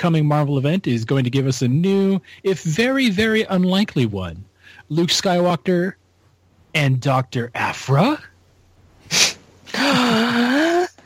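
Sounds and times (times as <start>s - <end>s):
speech: 0.0s - 6.0s, 6.8s - 8.3s
dramatic gasp with drawn-out voiced cry: 9.1s - 11.0s.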